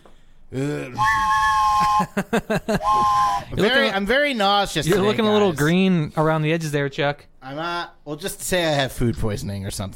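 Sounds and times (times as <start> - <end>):
speech: 0.5 - 9.9
train whistle sound effect: 1.0 - 2.1, 2.8 - 3.6
laughter: 1.7 - 3.9.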